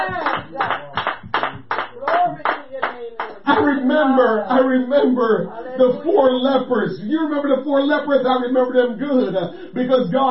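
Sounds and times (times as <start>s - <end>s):
crowd clapping hands in a steady rhythmic beat: 0.0s - 3.7s
voices singing or calling out: 2.0s - 6.9s
speech: 3.6s - 10.2s.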